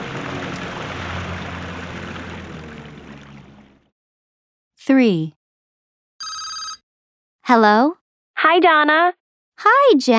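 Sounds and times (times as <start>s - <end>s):
fishing boat engine starting and running: 0.0s - 3.9s
water rushing and splashing: 0.0s - 3.9s
speech: 4.8s - 5.4s, 7.5s - 10.1s.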